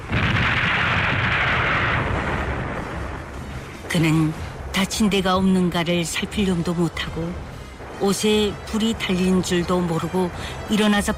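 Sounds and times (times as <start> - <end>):
artillery shell exploding: 0.0 - 2.8
speech: 3.9 - 11.1.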